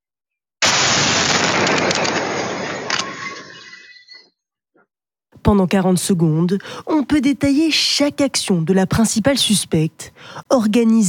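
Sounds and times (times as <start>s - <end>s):
parcel bomb explosion in filmed footage: 0.6s - 3.8s
speech: 5.5s - 11.0s.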